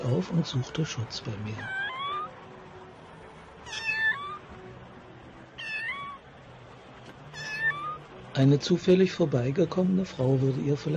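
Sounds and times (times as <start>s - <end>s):
speech: 0.0s - 1.9s, 8.4s - 10.9s
steady low hum: 0.0s - 10.9s
small cat meowing: 1.6s - 2.4s, 3.6s - 4.5s, 5.5s - 6.2s, 7.3s - 8.1s.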